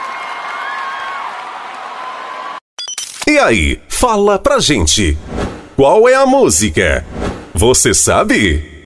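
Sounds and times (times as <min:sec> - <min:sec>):
crowd applause: 0:00.0 - 0:02.6
speech: 0:03.3 - 0:08.7.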